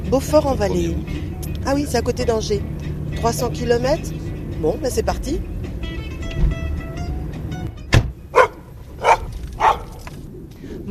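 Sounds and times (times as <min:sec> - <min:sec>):
low engine rumble from an idling vehicle: 0:00.0 - 0:10.8
speech: 0:00.1 - 0:05.5
dog barking at a plant nursery farm in Beaufort-en-Vallée: 0:08.3 - 0:10.0.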